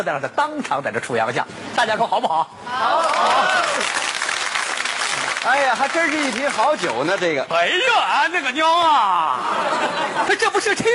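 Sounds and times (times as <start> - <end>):
speech: 0.0 - 3.6, 5.4 - 10.9
audience applause at a stage comedy performance: 2.9 - 7.4
laughter: 9.1 - 10.9.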